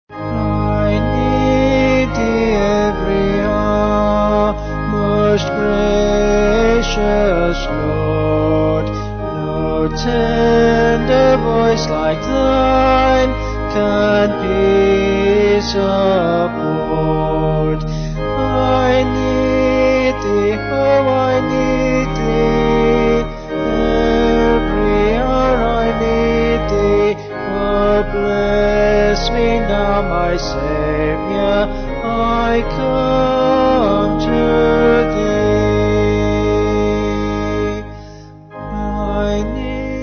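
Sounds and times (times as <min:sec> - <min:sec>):
organ: 0:00.0 - 0:40.0
person singing a hymn: 0:00.1 - 0:40.0.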